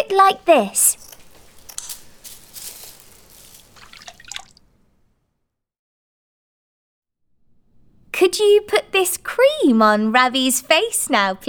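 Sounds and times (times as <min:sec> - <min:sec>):
speech: 0:00.1 - 0:01.0, 0:08.2 - 0:11.4
gauze being dipped in water and wrung out while making Halloween masks: 0:01.1 - 0:04.8.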